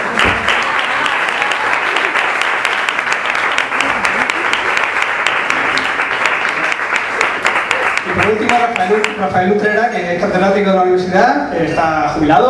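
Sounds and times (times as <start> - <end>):
audience applause for a guest at a film-themed presentation: 0.0 - 9.4
speech: 9.2 - 12.4.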